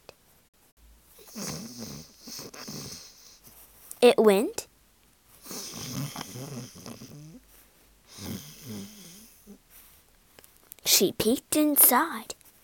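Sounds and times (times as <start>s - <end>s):
person imitating the snoring of an old witch: 1.2s - 3.3s, 5.4s - 7.4s, 8.1s - 9.6s
speech: 4.0s - 4.6s, 11.0s - 12.4s.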